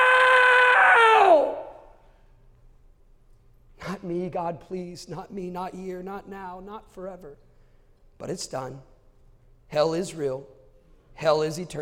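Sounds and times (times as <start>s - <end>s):
anguished human scream: 0.0s - 2.0s
speech: 4.0s - 7.5s, 8.2s - 8.9s, 9.7s - 10.6s, 11.2s - 11.8s.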